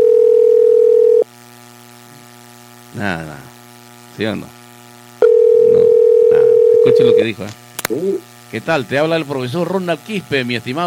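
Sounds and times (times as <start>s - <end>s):
telephone dial tone: 0.0s - 1.2s, 5.2s - 7.2s
speech: 4.2s - 4.5s, 7.0s - 10.8s.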